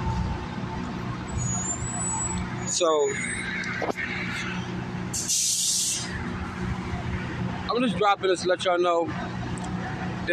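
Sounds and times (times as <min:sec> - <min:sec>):
large truck engine roar: 0:00.0 - 0:10.3
speech: 0:02.8 - 0:04.5, 0:07.8 - 0:09.3
air brakes hissing: 0:05.1 - 0:06.2.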